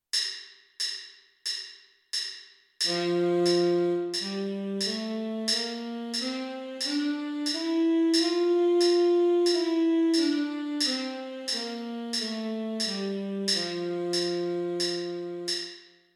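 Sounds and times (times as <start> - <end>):
tenor sax playing a G major scale: 2.9 - 15.8.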